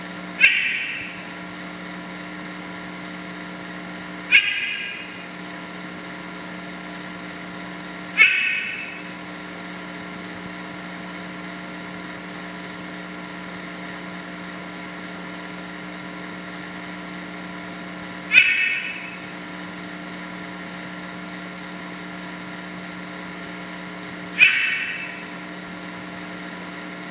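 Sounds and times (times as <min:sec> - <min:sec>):
Dendropsophus padreluna: 0:00.3 - 0:02.4, 0:04.2 - 0:05.9, 0:08.0 - 0:09.7, 0:18.2 - 0:19.8, 0:24.2 - 0:26.4.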